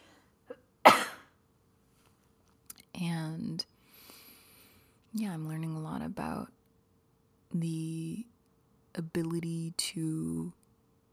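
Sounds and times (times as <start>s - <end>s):
person coughing: 0.5s - 1.4s
speech: 5.2s - 6.6s, 7.5s - 8.3s, 9.0s - 10.6s.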